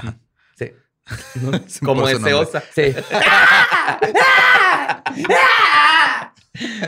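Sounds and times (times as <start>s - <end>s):
speech: 0.0s - 6.8s
laughter: 1.1s - 1.8s, 2.6s - 6.8s
wild cat, cougar or bobcat, screaming: 3.2s - 6.3s.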